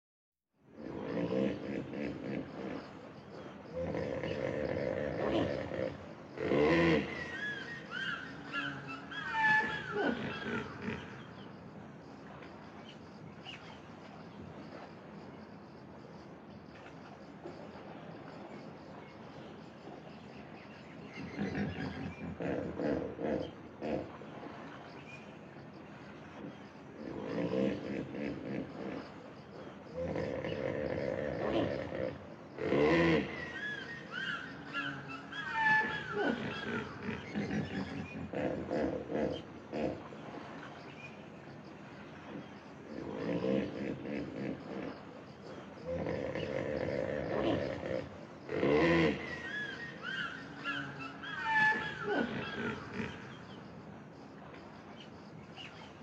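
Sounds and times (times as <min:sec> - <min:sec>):
hippopotamus vocalizing: 0:00.7 - 0:11.5, 0:21.1 - 0:24.4, 0:26.3 - 0:40.4, 0:42.2 - 0:53.5.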